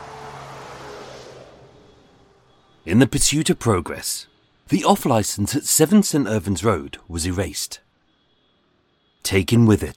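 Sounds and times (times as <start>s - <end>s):
trucks rumbling on the A40 flyover: 0.0s - 3.0s
road traffic roar on the A40 flyover: 0.0s - 9.2s
speech: 2.8s - 7.8s, 9.2s - 9.9s.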